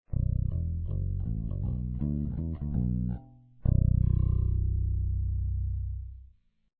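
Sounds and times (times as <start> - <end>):
guitars played with fingers on both pickups: 0.1 - 5.4.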